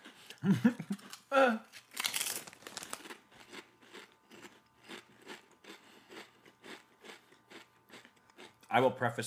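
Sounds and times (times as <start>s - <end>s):
black bean Sun Chips being crunched: 0.9s - 8.8s
crinkling crackly bursts: 1.0s - 3.6s.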